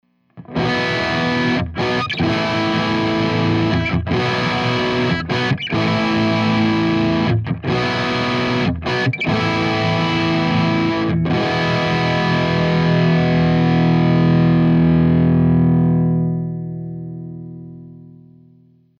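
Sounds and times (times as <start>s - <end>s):
high gain guitar bridge pickup hum: 0.1s - 18.5s.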